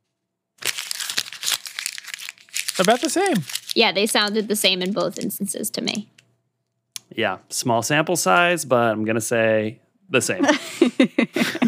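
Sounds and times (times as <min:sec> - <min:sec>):
paper banknote being crumpled: 0:00.6 - 0:05.6
speech: 0:02.8 - 0:06.2, 0:07.2 - 0:11.6
laughter: 0:10.3 - 0:11.6.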